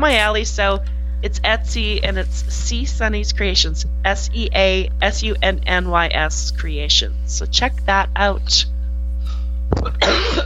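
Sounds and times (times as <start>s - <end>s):
speech: 0.0s - 8.7s, 9.8s - 10.4s
steady low hum: 0.0s - 10.4s
person coughing: 9.8s - 10.4s.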